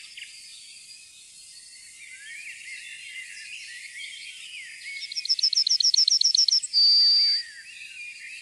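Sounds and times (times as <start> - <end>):
yellowhammer song: 0.0 - 8.4.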